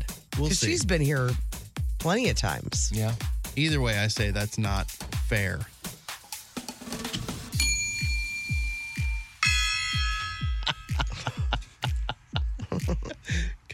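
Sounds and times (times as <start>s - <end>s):
low thudding beats: 0.0s - 6.0s, 7.2s - 13.3s
speech: 0.4s - 5.7s
bell ringing: 7.5s - 11.8s
laughter: 10.6s - 13.5s.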